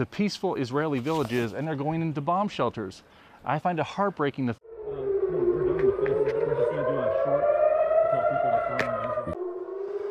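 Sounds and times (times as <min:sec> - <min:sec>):
speech: 0:00.0 - 0:04.6
air-raid warning sirens wailing in a Jerusalem street: 0:04.6 - 0:10.0.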